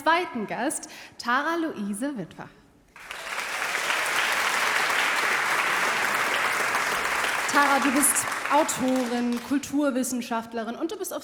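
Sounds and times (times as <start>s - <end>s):
speech: 0.0s - 3.2s, 7.5s - 11.2s
audience applause: 3.0s - 9.7s.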